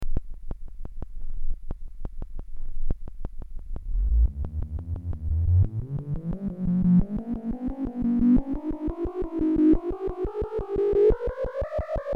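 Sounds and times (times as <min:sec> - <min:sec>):
synthesizer noise: 0:03.8 - 0:11.2.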